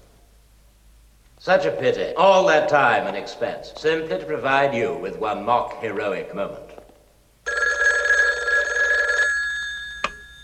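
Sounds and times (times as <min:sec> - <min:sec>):
speech: 0:01.4 - 0:06.7
red telephone ringing: 0:07.4 - 0:10.4.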